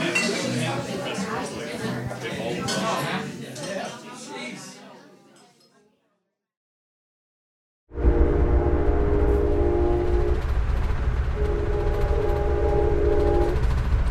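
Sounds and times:
murmuring chatter: 0.0 - 6.0
loud train rumbling: 8.0 - 14.0.

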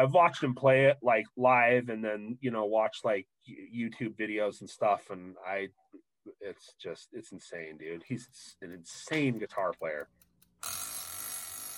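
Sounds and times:
speech: 0.0 - 10.8
electronic timer buzzer ringing: 10.5 - 11.7.

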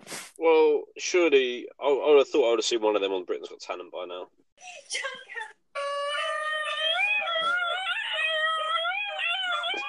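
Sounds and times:
speech: 0.4 - 5.9
dog howling in a yodel-like wavering howl: 5.8 - 9.8.

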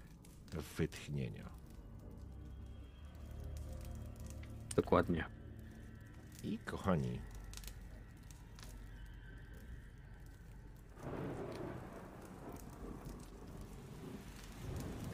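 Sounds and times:
steady hissing rain: 0.0 - 15.1
speech: 0.5 - 1.6, 4.8 - 5.4, 6.4 - 7.3
deep roll of thunder: 10.9 - 15.1.

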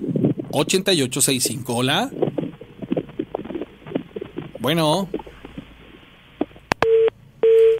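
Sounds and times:
speech: 0.5 - 2.2, 4.6 - 5.2
phone line hiss: 1.3 - 7.7
phone busy tone beeps over the line: 6.8 - 7.7.

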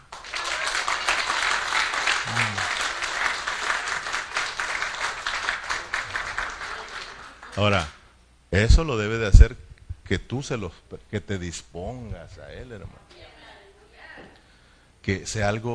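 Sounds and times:
audience at a church service applauding: 0.0 - 7.9
voice murmuring: 2.2 - 3.0
speech: 7.6 - 13.3, 15.0 - 15.7.

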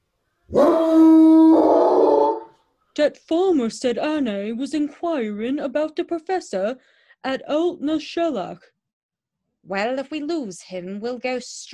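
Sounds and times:
tracking hounds following a man's scent baying and howling: 0.5 - 2.5
speech: 3.0 - 8.7, 9.6 - 11.7.

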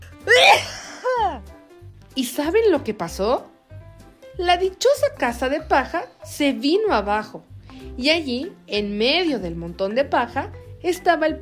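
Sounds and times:
loud theatrical sneeze: 0.3 - 1.4
speech: 2.2 - 3.5, 4.4 - 11.4.

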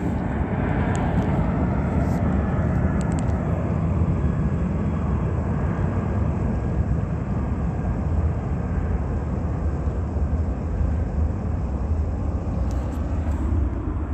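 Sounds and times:
airplane flying over a museum with low engine roar: 0.0 - 14.1.

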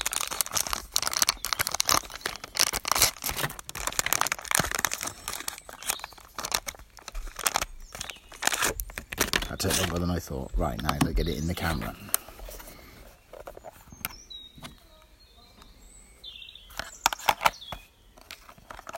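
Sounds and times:
foil wrapper of an instant film box being ripped: 0.0 - 11.0
instant film box being opened: 0.0 - 15.0, 16.7 - 18.9
speech: 9.6 - 12.1.

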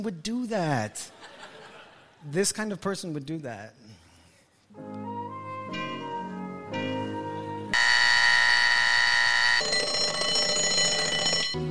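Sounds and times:
speech: 0.0 - 1.4, 2.2 - 4.0, 4.7 - 5.1
laughter: 0.9 - 2.3
alarm clock with harsh buzzing electronic tone: 7.8 - 11.6.

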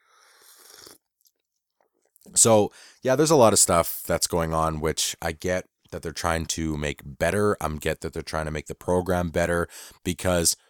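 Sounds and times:
person slurping hot coffee: 0.3 - 1.1
speech: 2.3 - 10.6.

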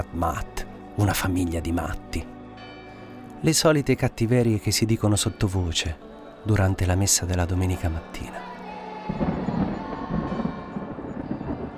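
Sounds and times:
speech: 0.0 - 2.3, 3.4 - 8.5
deep continuous rumble of thunder in a storm: 9.1 - 11.7.

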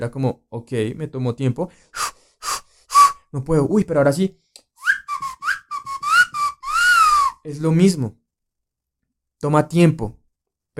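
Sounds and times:
speech: 0.0 - 2.1, 3.3 - 4.4, 7.4 - 8.2, 9.4 - 10.2
loud mouth whistle with rising chirped notes: 2.0 - 3.3, 4.8 - 7.4.

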